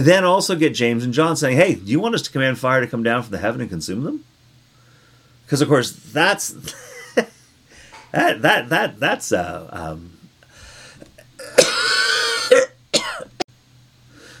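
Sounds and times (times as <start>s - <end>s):
speech: 0.0s - 4.3s, 5.5s - 7.3s, 8.1s - 10.2s
harsh coughing fit: 11.1s - 13.4s.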